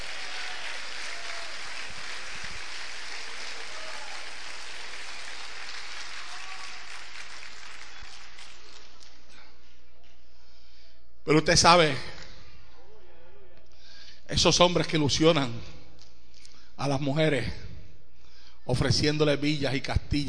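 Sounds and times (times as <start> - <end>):
church congregation applauding: 0.0 - 9.4
speech: 11.3 - 12.1, 14.4 - 15.8, 16.8 - 17.6, 18.7 - 20.2.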